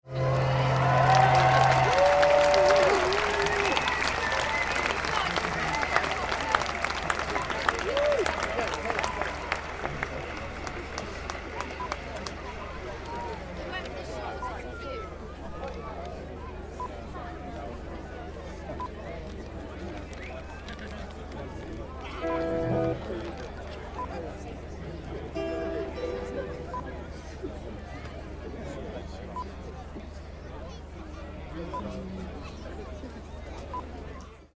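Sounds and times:
music festival crowd applause: 0:00.1 - 0:14.7, 0:20.7 - 0:24.3.

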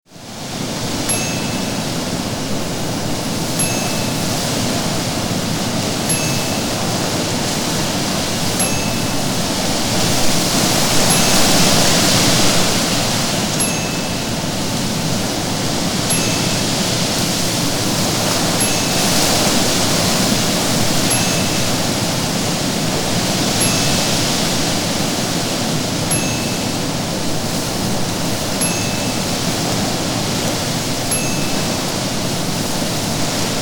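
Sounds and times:
wind blowing through trees: 0:00.0 - 0:33.6.

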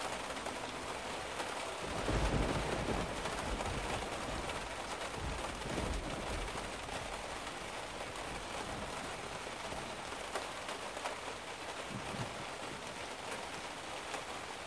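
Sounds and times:
severe thunderstorm: 0:00.2 - 0:14.6.

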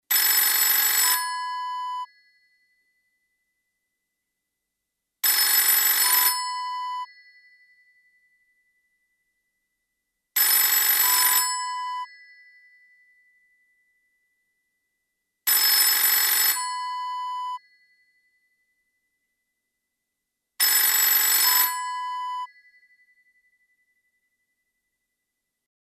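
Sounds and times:
old telephone ringing: 0:00.1 - 0:02.1, 0:05.2 - 0:07.1, 0:10.4 - 0:12.2, 0:15.5 - 0:17.6, 0:20.6 - 0:22.6.

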